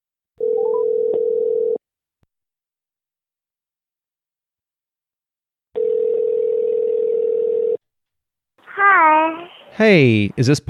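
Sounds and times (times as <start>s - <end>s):
electronic telephone dial tone while placing a call: 0.4s - 1.8s, 5.8s - 7.8s
speech: 9.8s - 10.6s.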